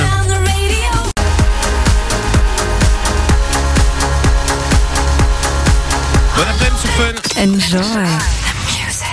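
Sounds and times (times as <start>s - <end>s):
pop dance track with pounding beat and bright synths on radio: 0.0s - 9.0s
speech: 7.0s - 8.8s.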